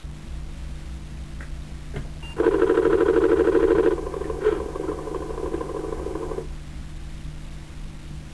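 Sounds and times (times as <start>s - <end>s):
Disk II disk drive starting up: 2.3s - 6.5s.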